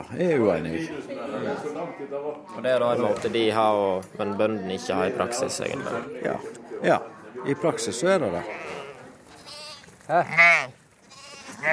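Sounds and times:
speech: 0.0s - 8.8s, 10.1s - 10.8s
sheep bleating on a farm meadow running to be fed: 8.4s - 11.7s.

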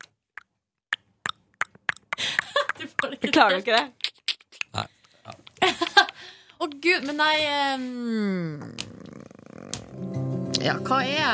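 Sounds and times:
person imitating alien-like clicking sounds with the mouth: 0.0s - 7.0s, 8.6s - 9.9s
laughter: 2.2s - 3.9s, 5.6s - 6.2s
speech: 3.0s - 4.0s, 4.7s - 5.0s, 6.6s - 8.7s, 10.6s - 11.3s.

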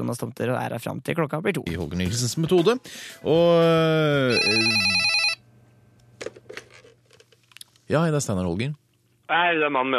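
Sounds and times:
speech: 0.0s - 5.2s, 7.9s - 9.9s
telephone ring tone on an outgoing call: 4.3s - 5.4s.

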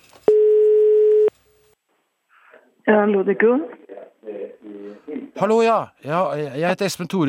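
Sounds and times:
telephone ringing tone on an outgoing call from Norway: 0.3s - 1.3s
speech: 2.9s - 3.8s, 5.4s - 7.2s.

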